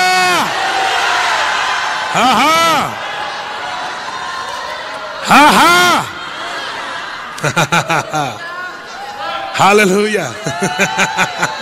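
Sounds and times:
loud voice shouting: 0.0s - 0.5s, 2.2s - 3.0s, 5.2s - 6.2s
crowd roaring and cheering: 0.0s - 11.6s
speech: 2.2s - 3.0s, 5.3s - 5.8s, 7.4s - 8.5s, 9.6s - 11.6s
laughter: 5.2s - 8.8s, 10.1s - 11.6s.

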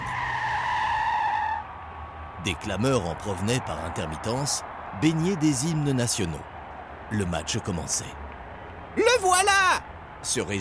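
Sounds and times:
bus tire screech skidding to a stop beside a stadium in Colombes: 0.0s - 7.5s
speech: 2.4s - 6.5s, 7.1s - 8.2s, 9.0s - 10.5s.

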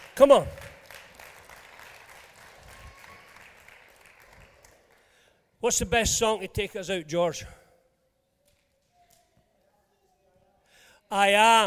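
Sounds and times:
audience applauding: 0.0s - 5.2s
speech: 0.2s - 0.7s, 5.6s - 7.6s, 11.1s - 11.6s.

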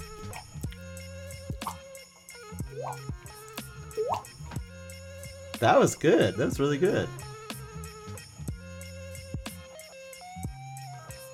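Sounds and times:
water dripping from a faucet: 1.5s - 1.8s, 2.7s - 4.6s
speech: 2.9s - 3.2s, 5.6s - 7.2s.

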